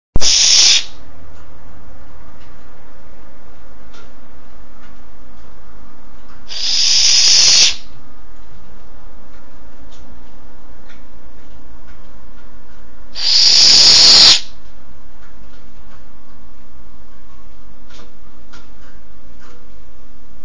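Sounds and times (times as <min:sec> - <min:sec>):
little owl cries: 0:00.2 - 0:01.0, 0:06.5 - 0:08.0, 0:13.1 - 0:14.6.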